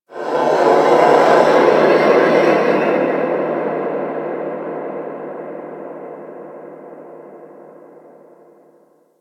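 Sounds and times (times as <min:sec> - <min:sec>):
large moon creature sounds: 0:00.1 - 0:03.6
ambience: 0:00.1 - 0:09.1.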